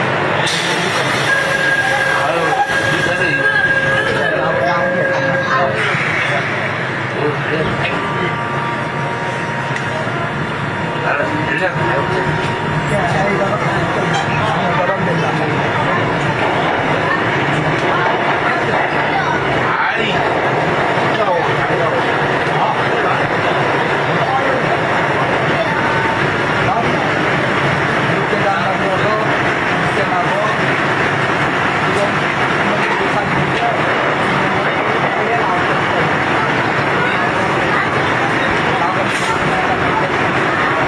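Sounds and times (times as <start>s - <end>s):
Seoul subway Line 2 train running between Sindang and Dongdaemun Stadium: 0.0s - 40.8s.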